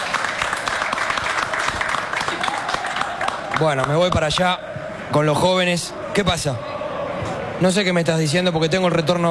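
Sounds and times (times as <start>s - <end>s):
audience applause: 0.0s - 4.6s
speech: 3.6s - 6.7s, 7.6s - 9.2s.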